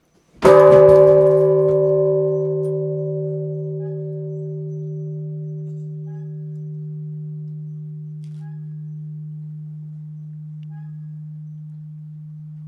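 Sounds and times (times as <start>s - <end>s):
bonsho Buddhist temple bell ringing: 0.4s - 12.6s.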